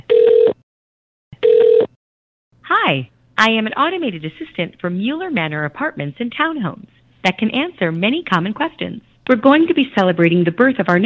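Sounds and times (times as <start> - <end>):
phone line ringing on an outgoing call: 0.0 - 0.6, 1.4 - 1.9
speech: 2.9 - 11.0.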